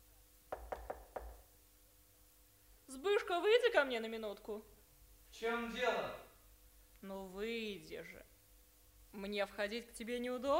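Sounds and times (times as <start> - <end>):
knocking on a wooden door: 0.5 - 1.5
speech: 3.0 - 4.8, 5.4 - 6.3, 7.0 - 8.3, 9.1 - 10.5.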